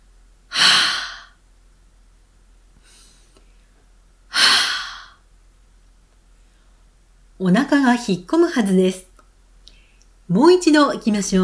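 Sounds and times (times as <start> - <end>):
forceful breathy exhale blown onto the palm of a hand: 0.5 - 1.3, 4.4 - 5.2
speech: 7.4 - 9.1, 10.3 - 11.4.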